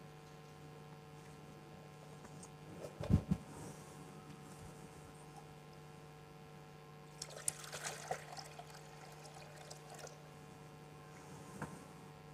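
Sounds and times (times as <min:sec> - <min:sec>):
low steady hum: 0:00.0 - 0:12.3
water poured into a baptismal font during a baptism: 0:07.1 - 0:10.2.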